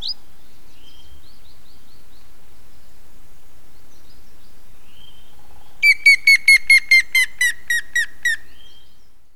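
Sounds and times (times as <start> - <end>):
Grey-headed woodpecker descending whistled call: 5.8 - 8.8.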